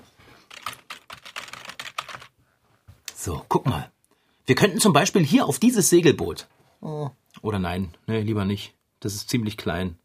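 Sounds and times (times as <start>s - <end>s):
typing on a computer keyboard: 0.5s - 2.3s
speech: 3.2s - 10.0s.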